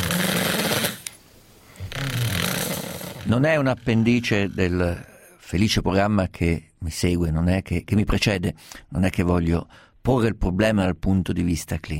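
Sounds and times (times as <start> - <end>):
snoring from throat and tongue tissue vibrating during sleep: 0.0 - 1.1, 1.8 - 5.4
speech: 3.3 - 11.9.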